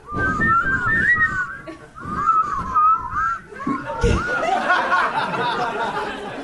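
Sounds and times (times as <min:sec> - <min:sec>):
person attempting to whistle: 0:00.0 - 0:04.4
airy noisy blowing close to the microphone: 0:00.0 - 0:04.5
laughter: 0:01.6 - 0:02.6, 0:03.5 - 0:06.4.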